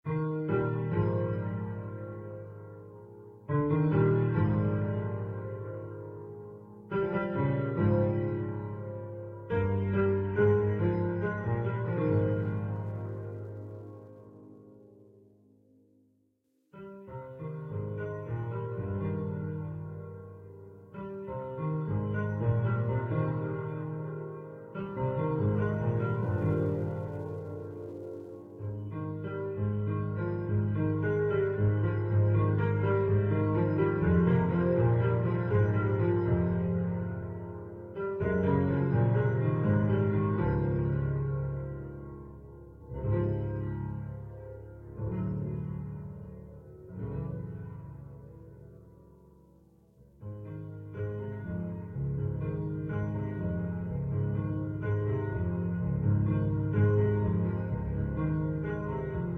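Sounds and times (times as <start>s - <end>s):
ambient music: 0.1s - 15.8s, 16.8s - 59.3s.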